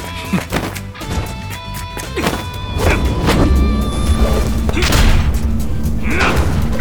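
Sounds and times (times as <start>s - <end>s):
heavy booms and thuds of a fist knocking away a cannon shell: 2.4s - 6.7s
loud sustained crashing roar: 2.5s - 6.7s.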